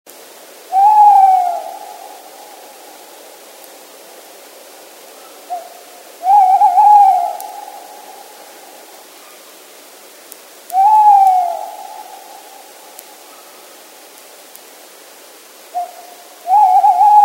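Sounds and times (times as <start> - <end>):
tawny owl calling: 0.7 - 2.7, 5.2 - 8.5, 10.7 - 13.7, 15.7 - 17.2.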